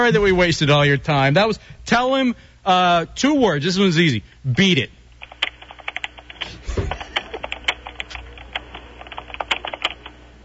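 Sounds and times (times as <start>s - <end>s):
speech: 0.0s - 5.0s, 6.4s - 7.1s
typing on a computer keyboard: 5.2s - 10.2s.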